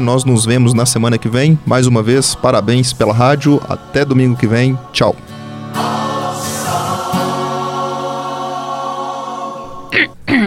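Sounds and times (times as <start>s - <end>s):
speech: 0.0s - 5.9s
steady tonal sound: 2.4s - 10.1s
throat clearing: 9.9s - 10.4s.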